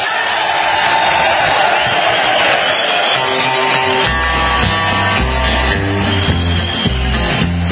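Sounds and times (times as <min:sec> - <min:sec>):
large live prison concert crowd cheering and shouting: 0:00.0 - 0:07.6
band playing with a thumping bass line: 0:03.1 - 0:07.6.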